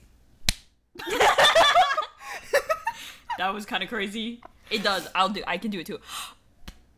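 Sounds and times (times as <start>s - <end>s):
hand slapping skin: 0.4s - 0.8s, 6.6s - 6.9s
giggling laughter: 1.0s - 3.4s
speech: 3.4s - 6.4s.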